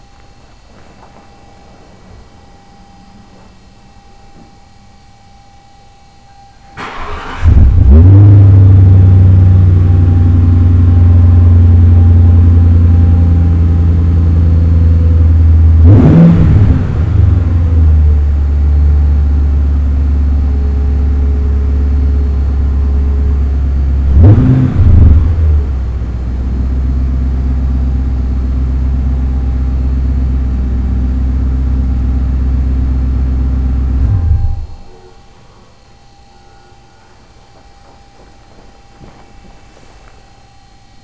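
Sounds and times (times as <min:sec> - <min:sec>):
exhaust: 0:06.8 - 0:35.8.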